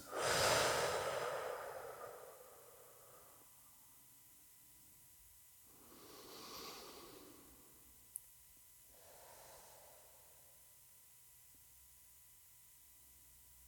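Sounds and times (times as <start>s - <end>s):
slow deliberate breathing in and out through the nose: 0.0s - 3.4s, 5.7s - 7.8s, 8.9s - 10.5s.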